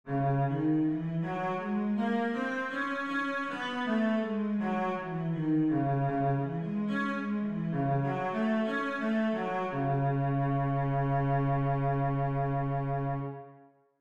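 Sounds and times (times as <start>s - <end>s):
cello playing C sharp minor scales: 0.1s - 13.6s.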